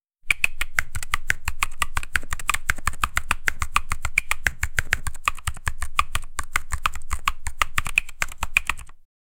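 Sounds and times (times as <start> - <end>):
typing on a soft squishy keyboard: 0.3 - 9.1.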